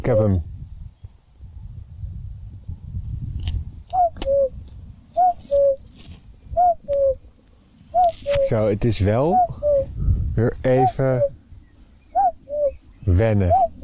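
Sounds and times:
speech: 0.0s - 0.5s, 8.5s - 9.6s, 10.4s - 11.3s, 13.1s - 13.6s
common cuckoo calling: 3.9s - 4.6s, 5.2s - 8.6s, 9.2s - 10.0s, 10.7s - 13.8s.

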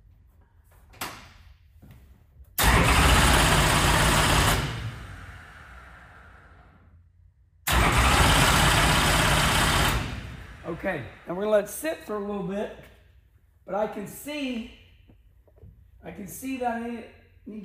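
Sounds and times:
race car engine spun over on the starter to clear excess fuel: 2.6s - 6.0s, 7.7s - 10.9s
speech: 10.8s - 12.9s, 13.7s - 14.8s, 16.0s - 17.6s.

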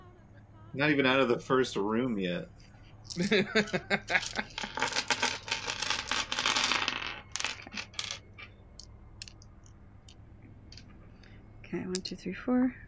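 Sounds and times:
speech: 0.7s - 5.0s, 11.7s - 12.8s
laughter: 3.1s - 4.8s
six-sided dice clattering across a hard surface: 4.1s - 10.9s.

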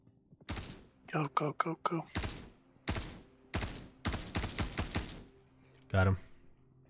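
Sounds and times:
video game gunfire: 0.5s - 1.0s, 2.2s - 5.4s
speech: 1.1s - 2.3s, 6.0s - 6.3s.

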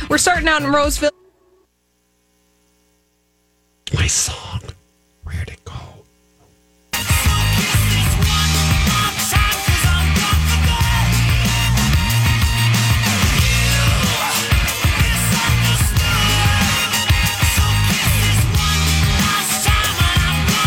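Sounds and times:
driving drums: 0.0s - 1.1s, 6.9s - 20.6s
speech: 0.1s - 1.2s, 4.1s - 5.5s
heavy distorted guitars: 6.9s - 20.6s.

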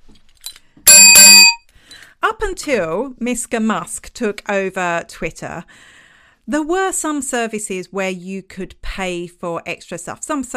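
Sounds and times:
bell ringing in a studio: 0.9s - 1.6s
speech: 2.3s - 10.5s.

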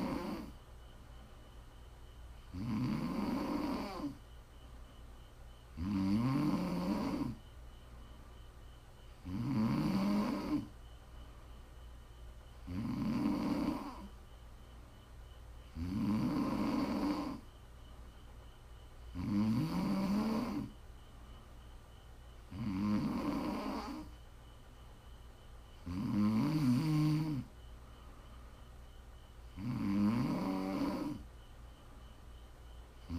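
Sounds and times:
heavy rasping snoring: 0.0s - 0.6s, 2.5s - 4.2s, 5.7s - 7.4s, 9.2s - 10.7s, 12.6s - 14.1s, 15.7s - 17.4s, 19.1s - 20.7s, 22.5s - 24.1s, 25.8s - 27.5s, 29.6s - 31.2s
faint constant hum: 0.0s - 33.1s.

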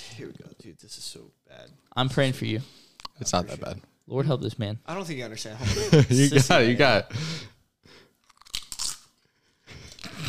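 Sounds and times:
speech: 0.2s - 8.0s
person chewing something crisp close to microphone: 8.2s - 9.1s.

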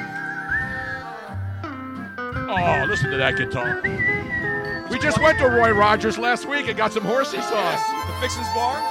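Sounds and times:
person whistling: 0.0s - 6.1s
speech: 2.5s - 8.9s.

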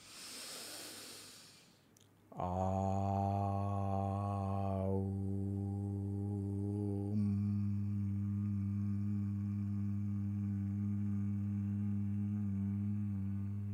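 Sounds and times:
deep breath drawn in during a vocal humming exercise: 0.0s - 1.8s
low sustained sung tone: 2.4s - 13.7s.

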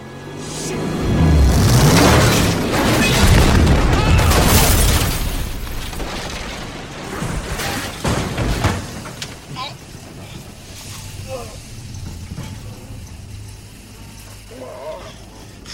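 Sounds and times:
booming rumble after car crash: 0.4s - 14.5s
debris clattering: 1.0s - 15.6s
car slamming down onto a boat: 1.6s - 10.7s.

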